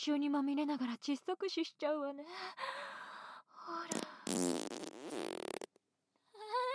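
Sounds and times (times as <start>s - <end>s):
speech: 0.0s - 2.8s
long rasping fart: 3.9s - 5.8s.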